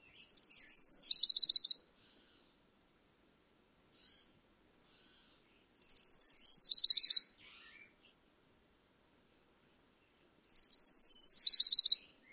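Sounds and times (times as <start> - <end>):
Colima warbler singing: 0.0 - 2.5, 4.0 - 8.2, 10.0 - 12.3.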